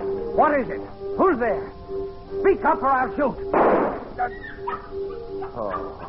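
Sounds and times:
speech: 0.4s - 6.0s
dog whimpering and whining in a room: 4.2s - 6.0s
dog short yelping barks in a room: 4.4s - 6.0s.

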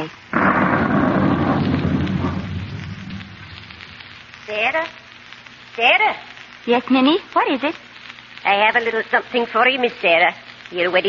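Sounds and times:
deep thunder rumbling: 0.3s - 4.4s
heavy rain in a storm: 0.3s - 4.7s
speech: 4.7s - 5.0s, 5.8s - 7.8s, 8.4s - 11.0s.

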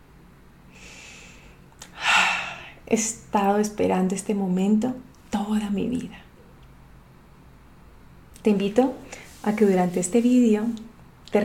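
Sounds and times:
person taking a long deep breath: 0.7s - 2.8s
speech: 2.9s - 6.2s, 8.4s - 11.4s.

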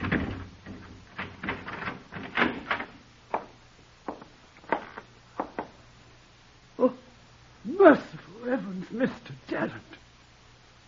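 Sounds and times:
door clunking as it is opened: 0.0s - 3.5s
speech: 7.8s - 10.0s.

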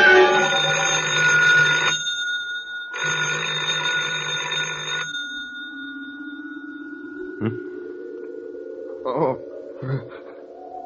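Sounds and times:
old-style telephone bell ringing: 0.2s - 8.1s
low tone: 5.1s - 10.8s.

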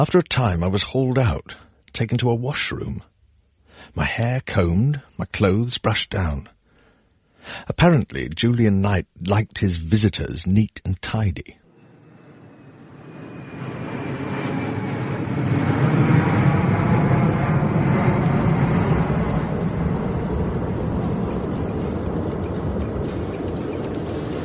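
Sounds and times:
speech: 0.0s - 3.1s, 3.8s - 6.5s, 7.5s - 11.6s
jet engines roaring in an airliner cabin in flight: 11.7s - 24.4s.

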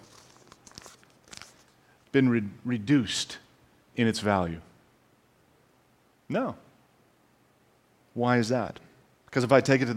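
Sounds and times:
paper banknote being crumpled in the hand: 0.0s - 1.8s
speech: 2.1s - 3.4s, 4.0s - 4.7s, 6.3s - 6.6s, 8.2s - 9.9s.

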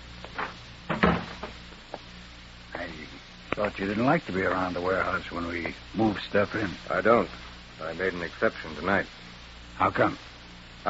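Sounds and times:
door shutting in a warehouse with a firm solid thump: 0.4s - 1.6s
speech: 3.6s - 9.2s, 9.8s - 10.8s.

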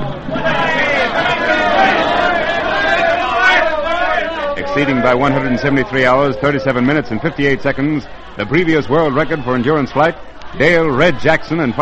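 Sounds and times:
large crowd cheering and shouting at an airplane landing: 0.0s - 11.7s
speech: 4.8s - 11.7s.

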